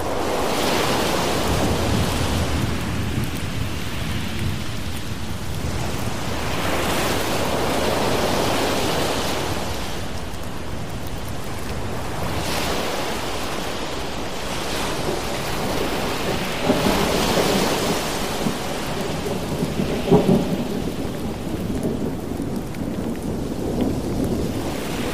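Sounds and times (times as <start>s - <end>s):
ocean waves washing in: 0.0s - 10.4s, 11.4s - 22.3s
steady dense rain: 0.0s - 25.1s.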